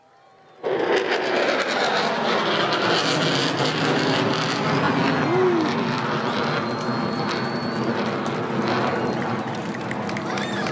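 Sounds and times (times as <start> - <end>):
military jet engine roaring overhead as it climbs vertically at Mindle Beach: 0.0 - 10.7.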